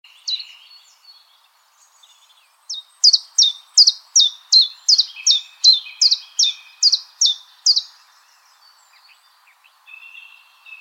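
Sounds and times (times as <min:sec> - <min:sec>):
common chiffchaff song, Phylloscopus collybita: 0:00.0 - 0:10.8.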